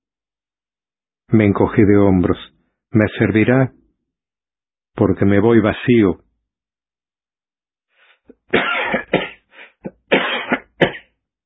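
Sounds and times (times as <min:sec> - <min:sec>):
speech: 0:01.3 - 0:03.8, 0:05.0 - 0:06.2
person hacking coughs: 0:08.5 - 0:11.1
throat clearing: 0:08.6 - 0:11.1.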